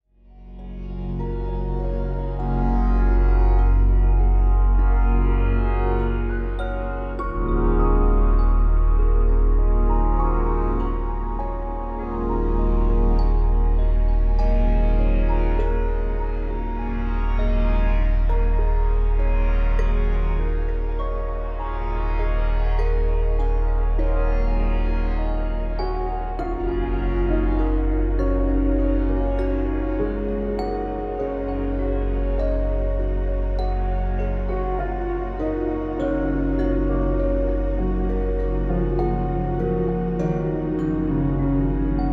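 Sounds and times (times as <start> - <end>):
3D relaxation music: 0.1 - 42.1.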